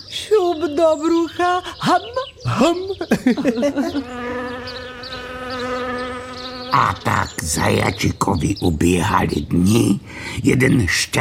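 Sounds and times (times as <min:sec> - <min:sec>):
speech: 0:00.2 - 0:04.4, 0:06.7 - 0:11.1
laughter: 0:02.0 - 0:04.6
mother's voice imitating a flying fly while feeding her son: 0:03.8 - 0:06.7
short burst of vocal sounds: 0:03.9 - 0:08.1.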